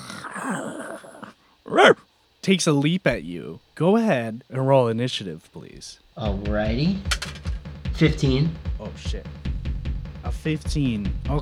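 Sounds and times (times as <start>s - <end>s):
wolf snarling: 0.0s - 2.1s
speech: 0.4s - 1.1s, 1.7s - 9.4s, 10.2s - 11.4s.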